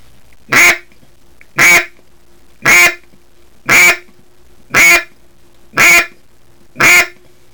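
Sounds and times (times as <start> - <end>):
duck call blown in nasal quacks: 0.5 - 0.9, 1.6 - 2.0, 2.6 - 3.0, 3.7 - 4.1, 4.7 - 5.1, 5.8 - 6.2, 6.8 - 7.2.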